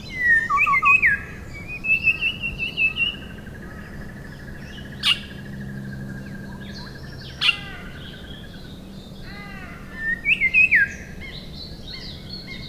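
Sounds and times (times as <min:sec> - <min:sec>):
rufous shrikethrush whistling calls, Colluricincla rufogaster: 0:00.0 - 0:03.2, 0:09.9 - 0:11.1.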